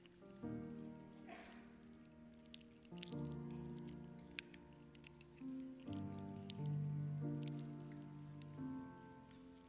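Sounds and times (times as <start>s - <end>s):
prepackaged communion cups being peeled open during a church communion service: 0.0s - 9.6s
soft sustained music: 0.0s - 9.6s.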